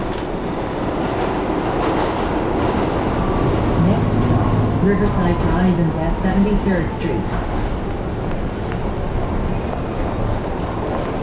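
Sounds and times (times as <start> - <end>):
New York City subway train rumbling along tracks in Manhattan: 0.0 - 11.2
subway train wheels rattling and clicking: 0.0 - 11.2
speech: 4.9 - 7.8.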